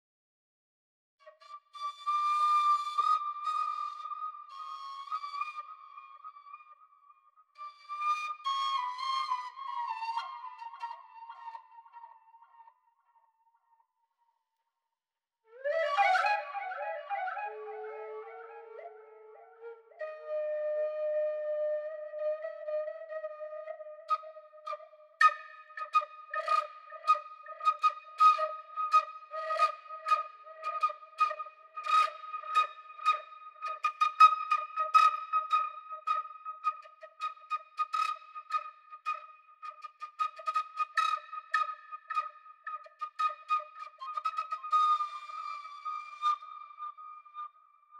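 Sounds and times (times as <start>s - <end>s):
flute from a game rip: 1.2s - 13.7s, 15.4s - 47.9s.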